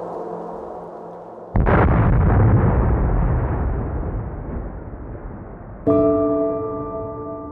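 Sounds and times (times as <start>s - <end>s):
atomic bomb explosion: 1.5s - 5.9s.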